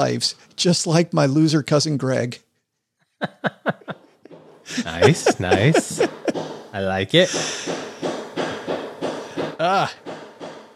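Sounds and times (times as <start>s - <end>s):
speech: 0.0s - 2.5s, 4.7s - 7.8s, 9.6s - 10.0s
laughter: 3.2s - 7.8s
hammer blows from kitchen renovation work: 4.3s - 10.7s
person exclaiming: 4.7s - 6.3s.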